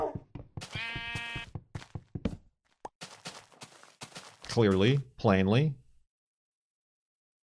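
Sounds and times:
soft thumps and footstep-like knocks: 0.1 - 2.5
sheep bleating: 0.6 - 1.5
speech: 4.5 - 5.8.

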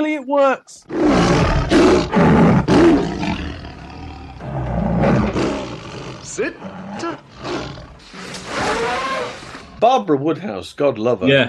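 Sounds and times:
speech: 0.0 - 3.0, 6.3 - 7.8, 8.7 - 11.4
lion roaring: 0.8 - 9.8.

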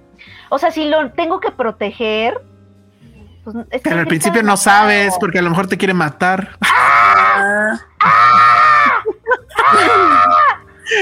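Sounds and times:
speech: 0.5 - 2.5, 3.4 - 8.5
person screaming theatrically: 6.6 - 11.0
laughter: 8.0 - 11.0.

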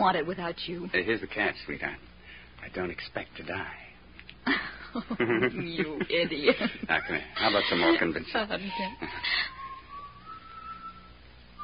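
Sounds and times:
speech: 0.0 - 9.6
laughter: 4.5 - 8.2, 8.8 - 9.5
person whistling: 8.6 - 11.6.

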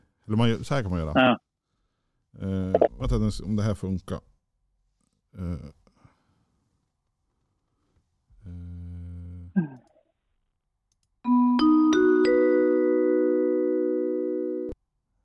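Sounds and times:
speech: 0.3 - 1.4, 2.4 - 4.3, 5.3 - 5.8
radio news jingle chime from a radio app on a phone speaker: 11.3 - 14.7.

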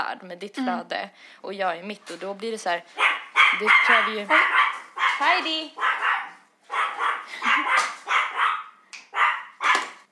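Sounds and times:
speech: 0.1 - 5.9
very small female dog barking at newspaper delivery: 3.0 - 10.0.

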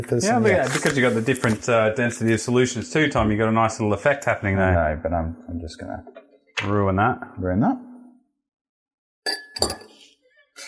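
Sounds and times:
speech: 0.0 - 7.9
glasses clinking in a toast: 9.3 - 10.0.

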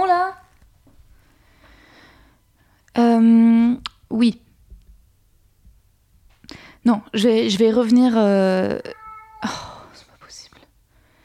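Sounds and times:
speech: 3.2 - 4.4, 6.8 - 9.7
cat meowing: 8.8 - 9.9.

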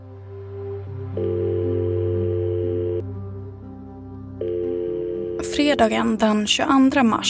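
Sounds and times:
unanswered call electronic telephone tone: 1.2 - 3.0, 4.4 - 5.6
speech: 5.6 - 7.2.

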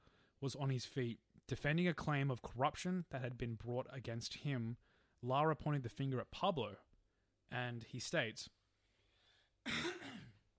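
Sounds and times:
speech: 0.4 - 6.9, 7.5 - 8.6, 9.6 - 10.0
loud raspy throat clearing: 9.6 - 10.5.

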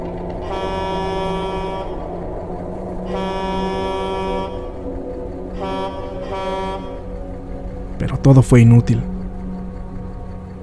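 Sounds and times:
truck horn honking: 0.4 - 2.0, 3.1 - 4.8, 5.6 - 7.1
speech: 8.0 - 9.1.

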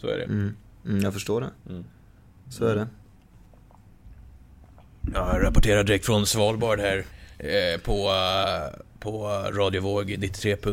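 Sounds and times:
speech: 0.0 - 3.0, 5.0 - 10.7
low steady rumble: 1.8 - 10.4
soft wet mouth clicks: 3.5 - 5.0
person gulping water: 4.6 - 5.2.

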